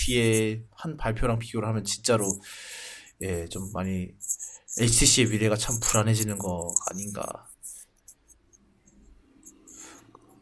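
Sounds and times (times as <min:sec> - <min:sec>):
earphone cord rubbing against its attached microphone: 0:00.0 - 0:00.5, 0:02.0 - 0:02.4, 0:03.2 - 0:10.1
speech: 0:00.0 - 0:07.5.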